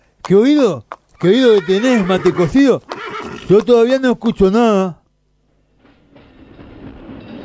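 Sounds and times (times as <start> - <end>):
speech: 0.3 - 2.9, 3.5 - 5.0
train rumbling: 5.5 - 7.4.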